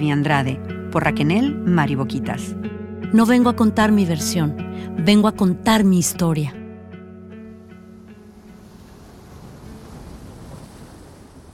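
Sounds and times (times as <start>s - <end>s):
speech: 0.0s - 6.6s
loud ocean waves crashing on the warm Mexican Pacific coast: 7.4s - 11.5s.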